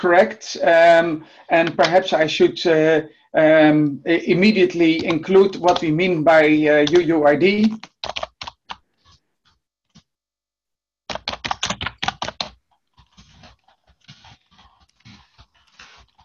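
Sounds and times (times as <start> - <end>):
speech: 0.0 - 8.2
keyboard typing: 4.8 - 9.2, 11.1 - 16.2.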